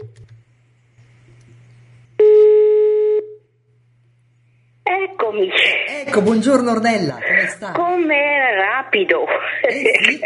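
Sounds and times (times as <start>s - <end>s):
telephone line tones as a call is placed: 2.2s - 3.4s
speech: 5.3s - 10.2s.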